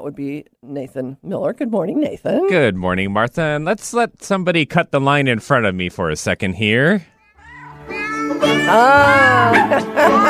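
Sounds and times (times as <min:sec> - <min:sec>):
speech: 0:00.0 - 0:07.1, 0:08.4 - 0:10.2
recorded cat meows strung into a jingle: 0:07.3 - 0:09.6
laughter: 0:08.7 - 0:10.2.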